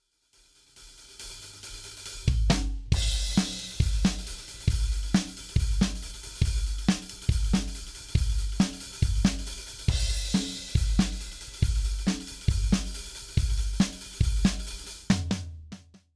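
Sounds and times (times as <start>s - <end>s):
drums: 0.4s - 16.1s.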